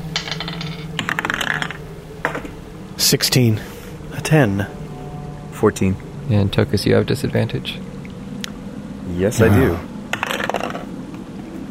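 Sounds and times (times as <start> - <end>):
dice clattering across a hard tabletop: 0.2 - 1.8
speech: 3.0 - 4.8, 5.6 - 7.8, 9.1 - 9.9.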